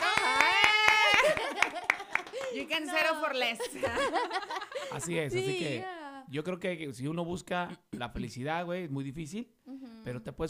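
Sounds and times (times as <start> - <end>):
hand clapping: 0.0 - 2.9
laughter: 0.0 - 5.8
speech: 2.7 - 10.4.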